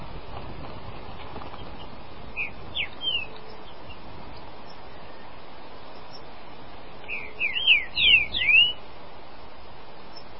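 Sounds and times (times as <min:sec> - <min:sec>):
Green-winged saltator song of loud clear sliding whistles: 0:07.1 - 0:08.8.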